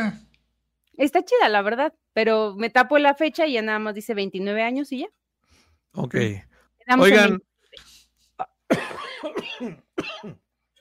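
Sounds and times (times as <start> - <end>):
speech: 1.0 - 5.2, 5.9 - 10.4
raspy chesty coughing fit: 8.7 - 10.5.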